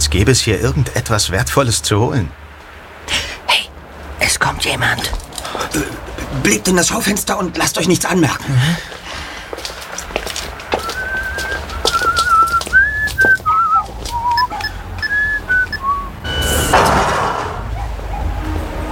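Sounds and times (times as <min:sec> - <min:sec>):
speech: 0:00.0 - 0:02.4, 0:04.3 - 0:09.0
street noise: 0:00.0 - 0:18.9
clip-clop-like knocks: 0:09.5 - 0:15.2
man whistling a tuneful melody: 0:10.8 - 0:16.5.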